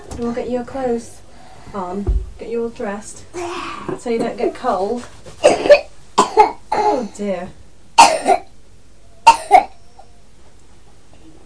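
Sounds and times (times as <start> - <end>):
speech: 0.2 - 5.8, 7.0 - 7.6
child coughing: 5.4 - 7.2, 8.0 - 8.5, 9.3 - 9.8.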